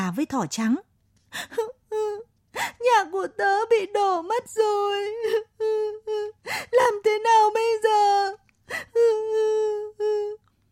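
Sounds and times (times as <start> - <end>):
speech: 0.1 - 10.4
voice imitating a rabbit character sobbing: 1.4 - 2.9, 4.9 - 10.4.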